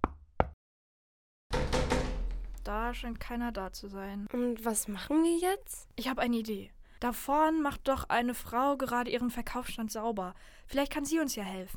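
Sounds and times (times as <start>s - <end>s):
sharp knocks at a door: 1.5s - 2.7s
speech: 2.6s - 11.7s.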